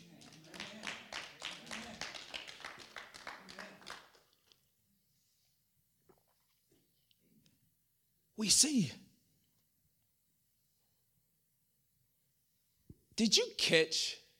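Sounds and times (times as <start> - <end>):
audience clapping: 0.0 - 4.7
speech: 8.4 - 9.0, 13.2 - 14.2.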